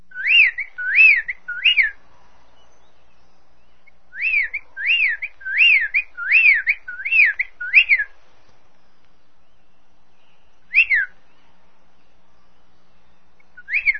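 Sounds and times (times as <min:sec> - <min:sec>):
bird giving clear whistled notes: 0:00.1 - 0:02.0, 0:02.7 - 0:08.1, 0:08.8 - 0:11.4, 0:13.4 - 0:13.9.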